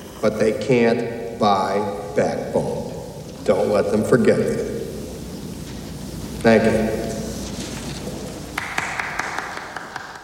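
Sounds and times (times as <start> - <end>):
constant hiss of noise: 0.0 - 10.2
speech: 0.2 - 4.7, 6.4 - 7.0
lone person clapping slowly: 8.6 - 10.2.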